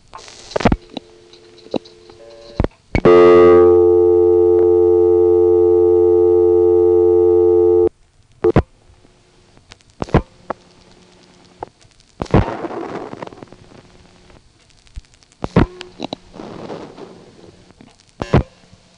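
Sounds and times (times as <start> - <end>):
telephone line clicks and thumps: 0.5 - 3.3, 9.6 - 13.6, 14.6 - 16.2
local telephone busy signal buzzing tone: 0.9 - 7.9.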